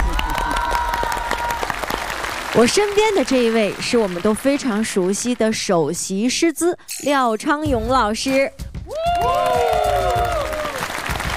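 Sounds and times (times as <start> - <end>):
group of participants clapping for themselves: 0.0 - 5.4, 9.1 - 11.3
speech: 2.6 - 8.6.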